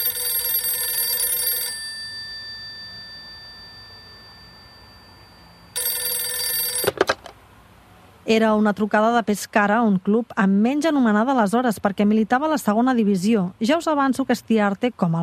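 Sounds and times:
old-style telephone bell ringing: 0.0 - 7.2
brief clatter of a telephone receiver: 6.6 - 7.4
speech: 8.3 - 15.2.

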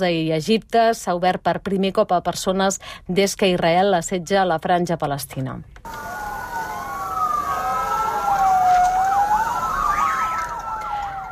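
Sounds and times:
speech: 0.0 - 6.2
ambulance siren wailing and yelping: 5.9 - 11.3.

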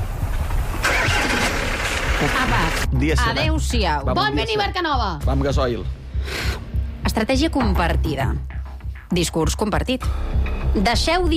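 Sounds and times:
car engine starting: 0.0 - 2.9
speech: 2.2 - 6.4, 7.2 - 11.3.

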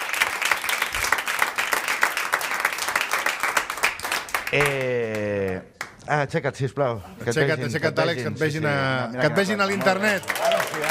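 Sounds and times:
audience applause from a small crowd: 0.0 - 5.6, 9.4 - 10.8
speech: 4.5 - 5.0, 5.6 - 10.8.

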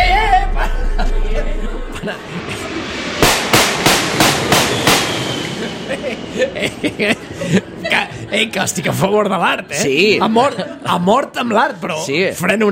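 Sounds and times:
low rumble: 0.0 - 7.9
laughter: 0.1 - 2.6, 5.5 - 9.1, 10.0 - 11.2
gunshots fired at a passing plane: 3.2 - 5.6
speech: 6.8 - 12.7.

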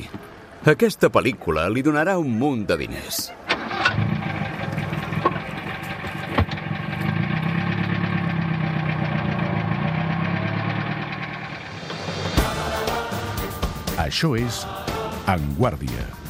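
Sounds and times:
speech: 0.0 - 4.1, 14.1 - 16.2
car engine idling: 3.3 - 13.9.

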